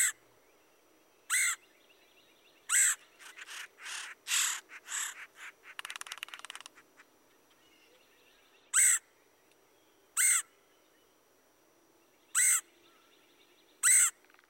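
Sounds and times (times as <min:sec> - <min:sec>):
red-headed woodpecker harsh raspy calls: 0:01.3 - 0:01.7, 0:02.7 - 0:07.1, 0:08.7 - 0:09.1, 0:10.2 - 0:10.5, 0:12.3 - 0:12.7, 0:13.8 - 0:14.4.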